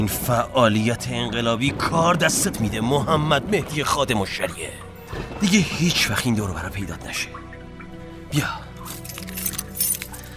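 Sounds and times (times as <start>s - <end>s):
speech: 0.0s - 7.4s, 8.3s - 8.6s
car keys jingling: 8.8s - 10.3s.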